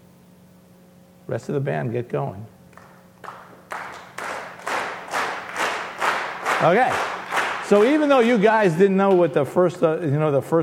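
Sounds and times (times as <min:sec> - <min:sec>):
speech: 0:01.3 - 0:02.6, 0:06.6 - 0:07.1, 0:07.7 - 0:10.6
audience clapping in rhythm during a laser demonstration: 0:02.7 - 0:10.0.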